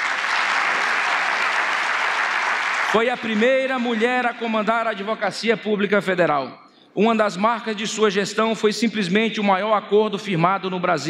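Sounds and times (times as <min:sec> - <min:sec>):
audience applauding a government minister: 0:00.0 - 0:05.0
speech: 0:02.9 - 0:11.0.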